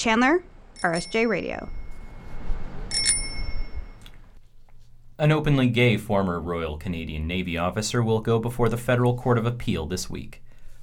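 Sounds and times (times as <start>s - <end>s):
speech: 0.0s - 1.8s, 5.2s - 10.4s
bicycle bell ringing: 0.8s - 2.3s, 2.9s - 4.0s
low rumble of street traffic: 1.7s - 4.4s.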